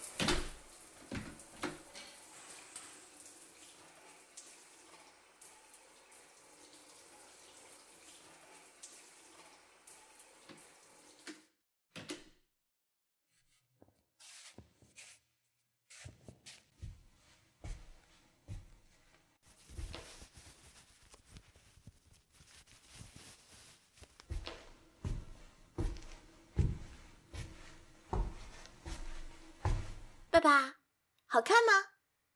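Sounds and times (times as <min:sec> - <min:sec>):
water running from a tap or into a tub: 0:00.0 - 0:11.5, 0:24.3 - 0:30.3
speech: 0:30.4 - 0:31.9.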